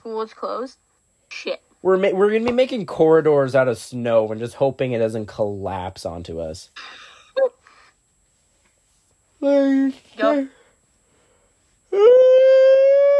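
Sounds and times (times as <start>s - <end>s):
speech: 0.0s - 7.5s, 9.4s - 10.6s, 11.9s - 12.4s
voice imitating whale call: 11.9s - 13.1s.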